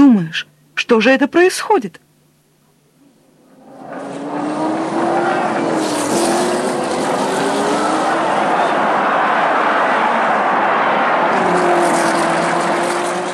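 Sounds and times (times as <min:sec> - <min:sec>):
speech: 0:00.2 - 0:02.0
race cars speeding during a race: 0:03.3 - 0:13.3.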